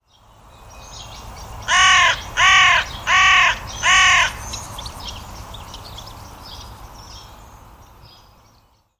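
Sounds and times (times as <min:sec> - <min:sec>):
bird giving harsh cawing calls: 0:01.6 - 0:04.6.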